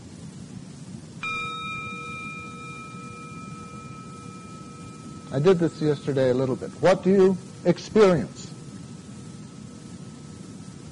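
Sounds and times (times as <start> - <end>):
soft hiss: 0.0 - 10.9
gong struck and ringing: 1.2 - 7.9
speech: 5.3 - 8.4.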